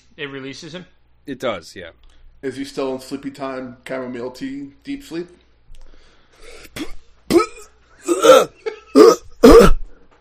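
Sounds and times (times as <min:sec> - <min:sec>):
speech: 0:00.2 - 0:05.4
person coughing and clearing their throat: 0:06.4 - 0:10.2.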